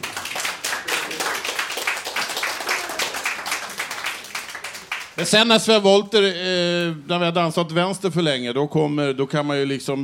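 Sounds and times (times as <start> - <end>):
audience clapping: 0.0 - 5.4
speech: 5.2 - 10.0.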